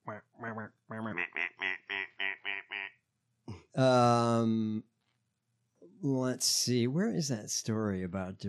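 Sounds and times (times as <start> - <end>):
duck quacking: 0.0 - 2.9
speech: 3.8 - 4.8, 6.0 - 8.4.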